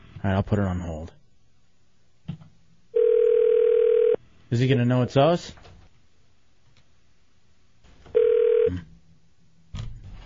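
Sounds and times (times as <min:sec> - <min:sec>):
speech: 0:00.2 - 0:01.2, 0:04.5 - 0:05.6
steady electronic telephone tone: 0:03.0 - 0:04.2, 0:08.1 - 0:08.8.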